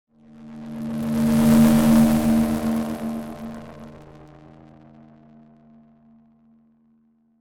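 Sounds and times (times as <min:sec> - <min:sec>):
UFO spacecraft flying past: 0:00.3 - 0:04.4.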